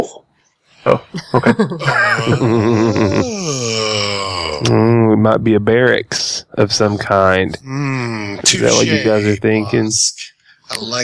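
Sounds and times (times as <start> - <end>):
speech: 0.0 - 11.0
laughter: 0.9 - 3.6, 8.4 - 9.8
voice imitating snoring with a droning groan and snort: 1.8 - 5.0, 7.5 - 9.3.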